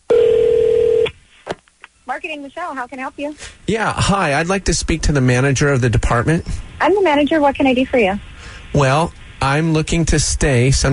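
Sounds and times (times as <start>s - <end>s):
loud steady electronic telephone tone at the start of a prank call: 0.1s - 1.2s
speech: 2.1s - 10.9s.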